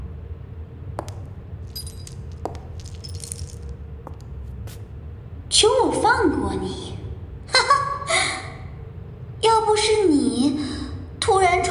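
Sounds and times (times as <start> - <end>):
low steady hum: 0.0 - 11.6
custom-made metal chains on a person clinking in a basement: 1.0 - 4.2
speech: 5.6 - 6.8.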